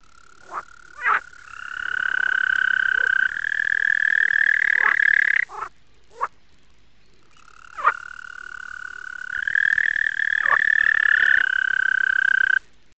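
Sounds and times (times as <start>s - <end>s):
European green toad calling: 0.0s - 6.4s, 7.3s - 12.6s.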